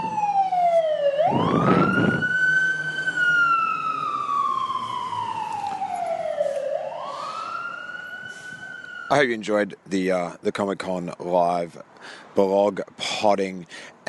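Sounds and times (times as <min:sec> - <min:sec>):
fire truck siren wailing: 0:00.0 - 0:09.5
fire truck engine rumble as the vehicle passes: 0:00.0 - 0:10.6
speech: 0:09.1 - 0:14.0.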